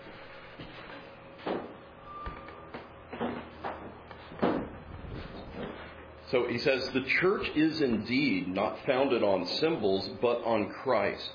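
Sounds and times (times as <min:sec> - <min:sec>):
low steady hum: 0:00.0 - 0:11.3
brief squeak of a door being opened: 0:02.1 - 0:02.7
speech: 0:06.3 - 0:11.3.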